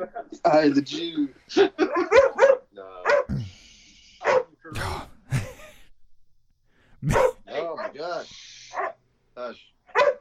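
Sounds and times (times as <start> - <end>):
speech: 0.0 - 2.1
dog barking: 1.8 - 3.4, 4.2 - 4.6, 7.0 - 8.1, 8.7 - 9.0, 9.9 - 10.2
dog whiny yips: 1.9 - 3.3, 9.9 - 10.2
human voices: 3.3 - 5.9.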